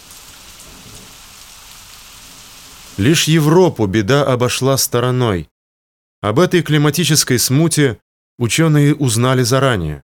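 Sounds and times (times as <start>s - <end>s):
heavy downpour of rain: 0.0s - 3.3s
speech: 3.0s - 5.5s, 6.2s - 10.0s.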